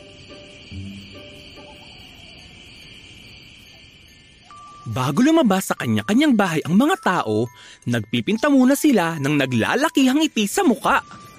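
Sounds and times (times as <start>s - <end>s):
crickets chirping at night: 0.0s - 11.3s
low tonal notes: 0.3s - 2.0s
speech: 4.9s - 11.2s.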